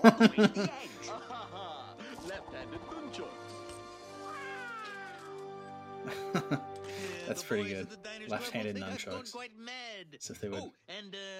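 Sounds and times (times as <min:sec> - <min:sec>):
speech: 0:00.0 - 0:01.6, 0:07.3 - 0:11.3
laughter: 0:00.0 - 0:02.5, 0:06.0 - 0:07.7
cat meowing: 0:04.2 - 0:05.3.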